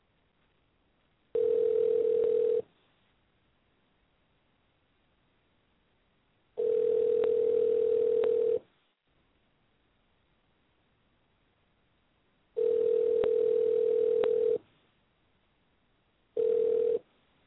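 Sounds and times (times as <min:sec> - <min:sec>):
ringback tone of an outgoing phone call: 0:01.4 - 0:02.6, 0:06.6 - 0:08.6, 0:12.6 - 0:14.6, 0:16.4 - 0:17.0.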